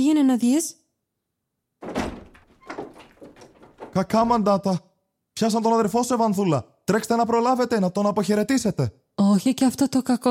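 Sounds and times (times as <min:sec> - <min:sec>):
speech: 0:00.0 - 0:00.8, 0:04.0 - 0:10.2
knocking on a wooden door: 0:01.8 - 0:04.5.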